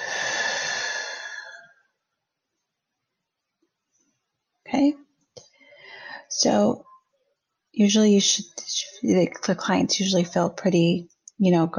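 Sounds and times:
slow exhale during a guided breathing exercise: 0.0s - 1.7s
speech: 4.8s - 5.0s, 6.4s - 6.8s, 7.8s - 11.7s.

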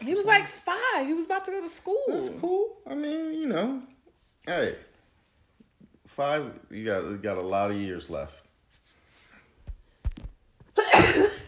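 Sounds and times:
speech: 0.1s - 4.9s, 6.1s - 8.4s
loud explosive sneeze: 10.8s - 11.4s.

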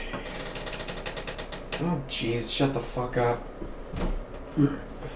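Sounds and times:
creaky door opening or closing: 0.1s - 2.0s
speech: 2.1s - 3.6s, 4.6s - 4.9s.

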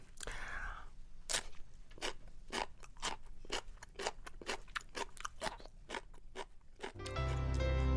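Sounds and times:
crunchy chewing of pickled radish: 1.3s - 7.6s.

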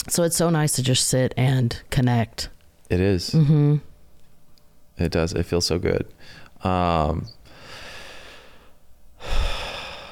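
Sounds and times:
speech: 0.2s - 3.9s, 5.0s - 7.4s
person letting out a deep voiced sigh and breathy exhale: 9.2s - 10.1s.

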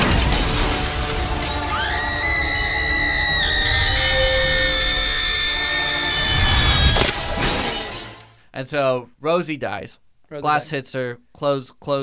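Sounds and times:
loud crash: 0.0s - 8.4s
shrill horror-movie scream: 1.4s - 7.4s
speech: 8.6s - 12.0s.

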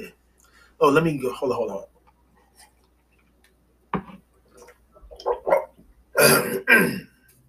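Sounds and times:
speech: 0.8s - 1.9s, 6.2s - 7.1s
man clearing his throat: 6.2s - 7.1s.

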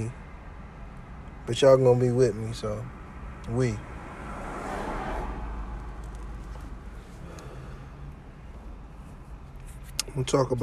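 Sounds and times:
speech: 1.5s - 3.9s, 10.2s - 10.6s
car driving past outdoors: 3.2s - 8.5s.

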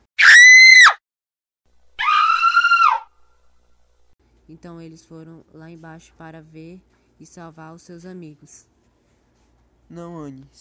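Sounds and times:
person screaming in a basement: 0.2s - 1.0s, 2.0s - 3.1s
speech: 4.5s - 8.7s, 9.9s - 10.6s.

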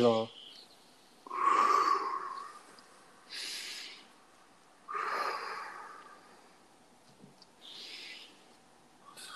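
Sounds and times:
deep slow breathing: 1.2s - 4.2s, 4.8s - 6.8s, 7.6s - 9.3s.

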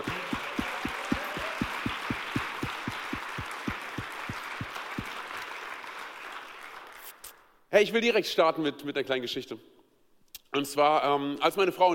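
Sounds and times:
regular low thumping beat: 0.0s - 5.2s
large church audience in Gießen applauding: 0.0s - 7.1s
speech: 7.8s - 9.8s, 10.6s - 11.9s.

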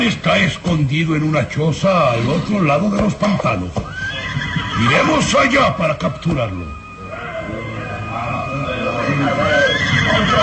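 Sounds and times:
speech: 0.0s - 6.8s
steady noisy outdoor background: 0.0s - 10.4s
horse whinnying with a rising wavering call: 3.8s - 10.4s.

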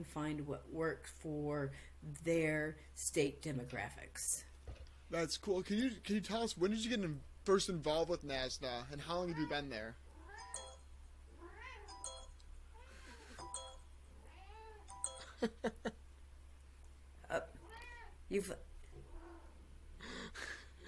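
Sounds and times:
speech: 0.0s - 10.0s, 15.4s - 16.0s, 17.3s - 17.6s, 18.3s - 18.7s
cat meowing: 9.2s - 10.6s, 11.4s - 12.0s, 14.2s - 14.9s, 17.6s - 18.2s.

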